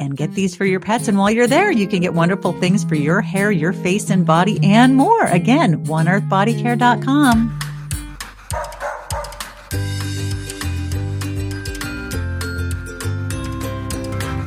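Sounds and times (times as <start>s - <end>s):
speech: 0.0s - 7.6s
sustained musical backing: 0.0s - 8.5s, 9.3s - 14.4s
dog barking and yipping: 8.4s - 9.7s.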